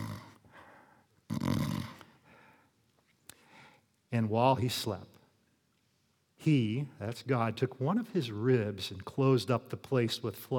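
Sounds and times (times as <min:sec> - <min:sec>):
person imitating snoring: 0:00.0 - 0:00.4, 0:01.3 - 0:02.0
speech: 0:04.1 - 0:05.2, 0:06.4 - 0:10.5.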